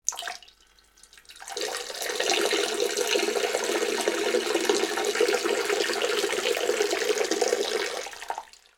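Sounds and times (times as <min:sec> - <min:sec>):
person urinating: 0:00.0 - 0:08.7.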